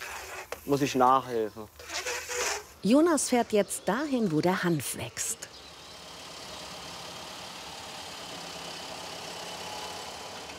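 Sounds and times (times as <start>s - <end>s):
speech: 0.7s - 1.9s, 2.8s - 5.4s
thresher running while threshing hemp: 5.7s - 10.5s.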